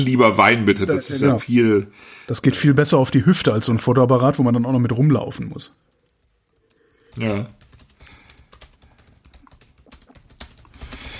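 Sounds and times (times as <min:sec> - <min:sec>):
speech: 0:00.0 - 0:06.0, 0:07.2 - 0:07.6
typing on a computer keyboard: 0:05.9 - 0:11.1.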